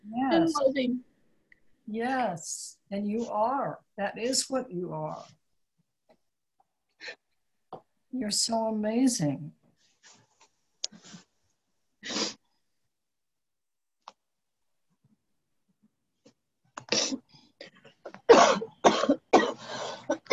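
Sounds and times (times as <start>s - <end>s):
speech: 0.4s - 1.1s, 1.9s - 5.4s, 7.0s - 7.2s, 8.1s - 10.2s
person clearing throat on an online community call: 18.1s - 20.3s
person coughing on an online community call: 18.1s - 20.3s.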